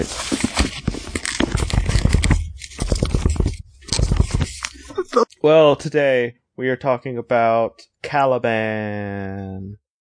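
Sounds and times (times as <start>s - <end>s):
speech: 0.0s - 0.8s, 5.4s - 9.8s
paper rustling and scraping: 0.0s - 4.9s.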